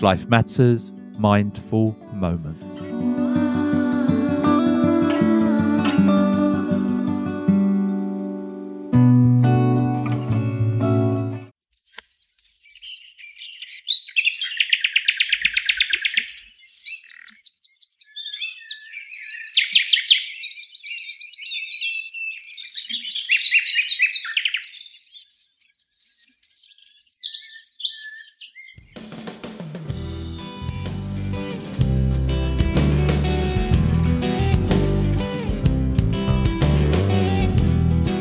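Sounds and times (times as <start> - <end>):
speech: 0.0 - 3.7
music: 0.0 - 11.5, 29.0 - 38.1
nightingale singing: 11.6 - 29.0.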